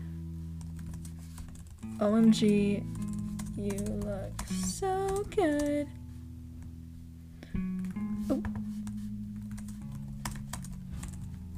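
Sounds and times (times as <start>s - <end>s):
steady low electrical hum: 0.0s - 11.5s
typing on a computer keyboard: 0.6s - 5.8s, 9.4s - 11.3s
speech: 1.9s - 3.0s, 3.6s - 6.0s, 8.3s - 8.6s.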